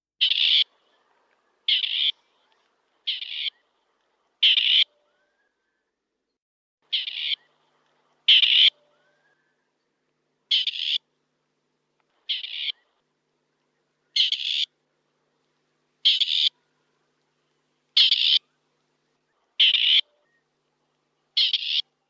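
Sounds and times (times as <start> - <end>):
grey partridge calling: 0.2 - 0.7, 1.7 - 2.2, 3.1 - 3.6, 4.4 - 5.0, 6.9 - 7.6, 8.3 - 9.3, 10.5 - 11.0, 12.2 - 13.0, 14.1 - 14.7, 16.0 - 16.6, 18.0 - 18.5, 19.6 - 20.4, 21.4 - 21.9.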